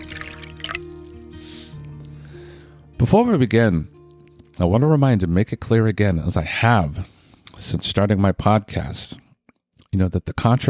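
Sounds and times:
drink pouring into a glass: 0.0 - 1.4
speech: 3.0 - 4.0, 4.6 - 9.2, 9.9 - 10.6.

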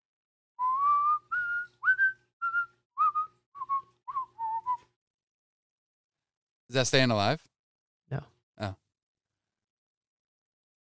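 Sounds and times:
person whistling a short melody: 0.6 - 5.0
speech: 6.7 - 7.5, 8.1 - 8.8.

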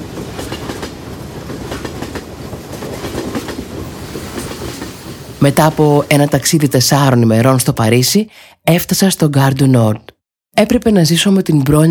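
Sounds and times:
train wheels clickety-clack on rails: 0.0 - 6.0
train to Paris running on rails: 0.0 - 7.2
speech: 5.4 - 11.8.

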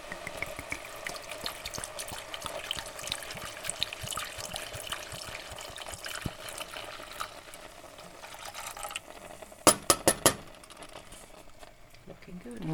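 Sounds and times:
red wine poured into a pan of mushrooms sizzling: 0.0 - 12.7.

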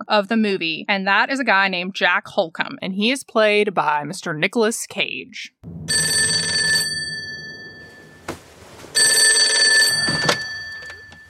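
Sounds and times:
speech: 0.1 - 6.0
telephone bell ringing: 5.9 - 8.3, 8.9 - 11.2.

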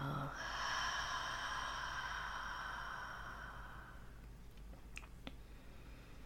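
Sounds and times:
slow deep breathing in and out: 0.2 - 4.4, 5.3 - 6.2.

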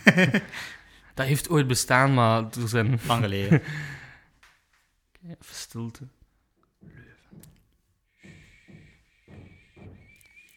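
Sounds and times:
laughter: 0.0 - 0.6
speech: 0.1 - 4.0, 5.2 - 6.2
heavy knocking on a door: 6.8 - 10.5.

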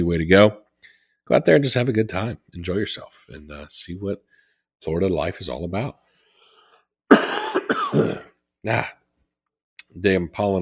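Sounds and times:
speech: 0.0 - 0.6, 1.3 - 6.0, 7.9 - 9.0, 9.9 - 10.5
person clearing throat: 7.1 - 8.4
person coughing with phlegm: 7.1 - 8.4.

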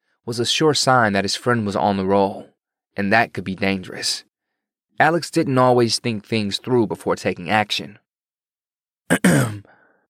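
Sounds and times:
speech: 0.2 - 4.3, 5.0 - 8.0, 9.1 - 9.8
throat clearing with a harsh rasp and falling grunt: 9.1 - 9.8.

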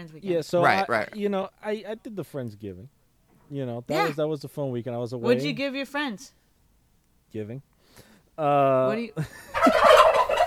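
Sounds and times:
speech: 0.0 - 6.4, 7.3 - 10.1
turkey gobbling: 9.5 - 10.4.

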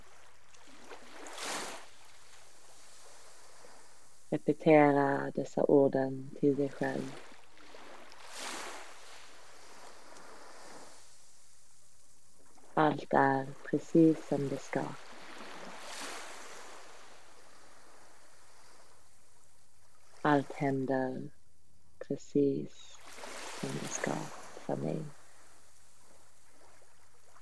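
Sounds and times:
gentle ocean waves: 0.0 - 27.4
person speaking calmly: 4.3 - 7.1, 12.8 - 15.0, 20.3 - 21.3, 22.0 - 23.0, 23.6 - 25.1
speech: 4.3 - 7.3, 12.9 - 15.0, 20.3 - 21.4, 22.1 - 25.2.

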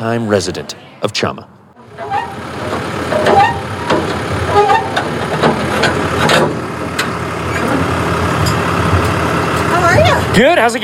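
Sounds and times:
speech: 0.0 - 2.1, 10.4 - 10.8
pickup truck idling with low engine rumble: 1.6 - 10.8
metallic clanks and rattles of a trailer being unhitched from a pickup truck: 1.8 - 10.1.

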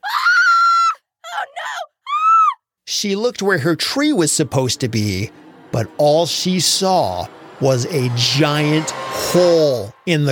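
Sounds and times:
girl screaming in horror: 0.0 - 2.6
speech: 3.0 - 10.3.

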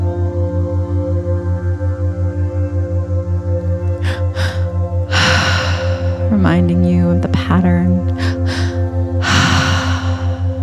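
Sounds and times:
steady pulsing low drone: 0.0 - 10.6
sharp breathwork inhale: 4.0 - 6.3, 8.2 - 10.6
speech: 6.5 - 8.2.

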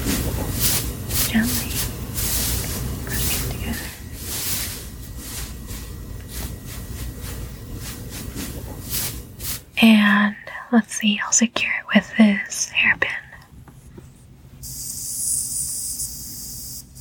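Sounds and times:
hair rustling as it is twisted and wrapped into a bun: 0.0 - 9.7
speech: 1.3 - 1.7, 9.8 - 13.2.

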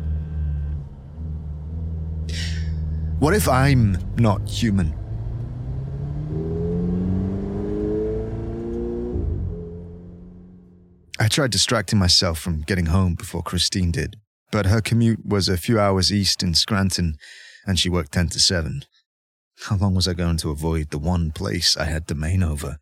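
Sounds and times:
car engine revving while reversing: 0.0 - 11.0
speech: 3.2 - 5.0, 11.3 - 19.0, 19.6 - 22.8.

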